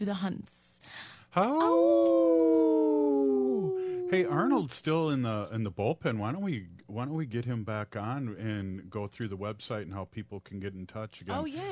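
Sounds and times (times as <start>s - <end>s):
speech: 0.0s - 11.7s
wolf howling: 1.5s - 4.6s.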